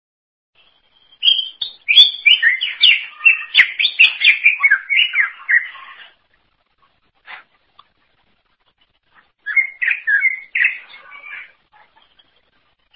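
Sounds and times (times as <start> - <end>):
greater green leafbird singing whistles and chatters: 0.6 - 6.2, 9.4 - 12.3.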